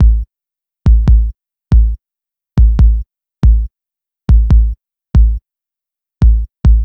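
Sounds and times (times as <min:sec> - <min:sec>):
trip-hop kick drum beat loop: 0:00.0 - 0:00.3, 0:00.9 - 0:02.0, 0:02.6 - 0:03.7, 0:04.3 - 0:05.4, 0:06.2 - 0:06.8.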